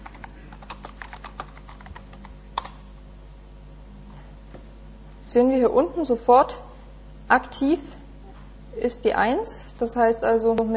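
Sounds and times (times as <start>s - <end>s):
typing a message on a computer keyboard: 0.0s - 2.8s
low steady hum: 0.0s - 10.7s
speech: 5.3s - 6.7s, 7.3s - 8.0s, 8.8s - 10.7s.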